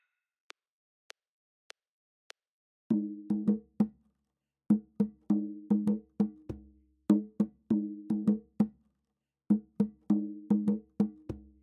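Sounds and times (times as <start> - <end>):
African rhythms at 100 bpm: 2.9 - 4.0, 4.7 - 8.8, 9.5 - 11.6.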